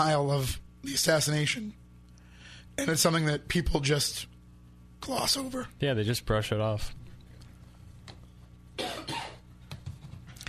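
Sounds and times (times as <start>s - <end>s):
speech: 0.0s - 1.8s, 2.8s - 4.3s, 5.0s - 7.0s
harsh raspy coughs: 8.8s - 9.5s.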